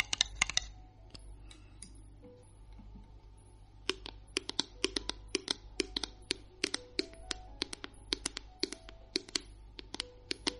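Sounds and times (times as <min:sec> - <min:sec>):
long fingernails tapping on a hard object: 0:00.0 - 0:00.7, 0:03.9 - 0:10.5
low steady hum: 0:00.0 - 0:10.5.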